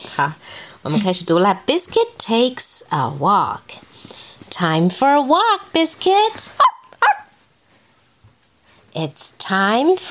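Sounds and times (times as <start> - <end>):
speech: 0.2 - 6.7, 9.0 - 10.0
small dog barking: 6.6 - 7.4.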